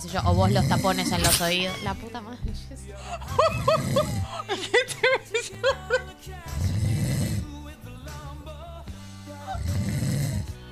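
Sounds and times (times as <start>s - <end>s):
person imitating snoring with mouth closed: 0.0s - 1.7s, 3.1s - 4.5s, 5.7s - 7.8s, 9.3s - 10.7s
speech: 0.0s - 6.8s
laughter: 3.0s - 6.2s.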